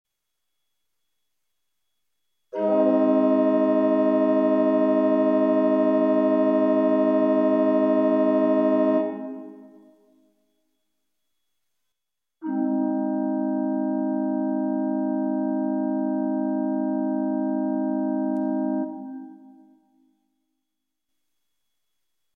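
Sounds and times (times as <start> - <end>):
open and stopped diapason organ A flat chord in close position: 2.5 - 10.0, 12.4 - 19.8.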